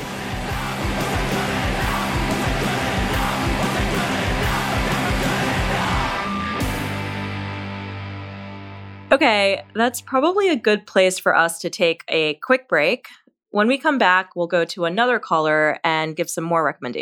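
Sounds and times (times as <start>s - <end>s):
shouted vocals: 0.0s - 6.9s
fast driving drums: 0.0s - 7.4s
loud dense emo punk song: 0.0s - 9.1s
wall of distorted guitars: 0.0s - 10.2s
speech: 9.2s - 17.0s.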